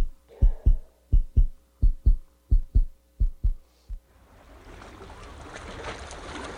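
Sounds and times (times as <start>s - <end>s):
quick pounding nervous heartbeat: 0.0s - 3.6s.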